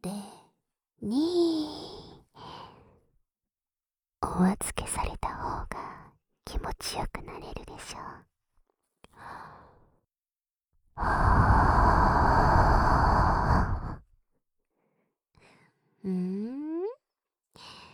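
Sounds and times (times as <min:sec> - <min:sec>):
speech: 0:01.0 - 0:01.8, 0:04.2 - 0:04.9, 0:06.5 - 0:08.3, 0:11.0 - 0:11.3, 0:16.0 - 0:16.6
long breath blown steadily into the ear: 0:11.0 - 0:14.0.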